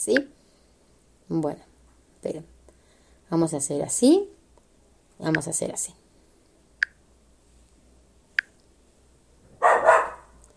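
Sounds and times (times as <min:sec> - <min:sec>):
speech: 0:00.0 - 0:00.4, 0:01.3 - 0:02.5, 0:03.3 - 0:04.4, 0:05.2 - 0:06.0
small dog yapping: 0:09.6 - 0:10.4.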